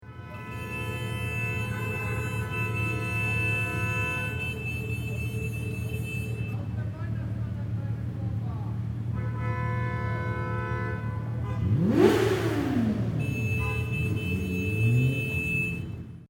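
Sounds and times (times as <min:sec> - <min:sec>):
horns honking on New Year's Eve: 0:00.0 - 0:07.5, 0:08.8 - 0:16.2
engine revving: 0:11.5 - 0:15.5.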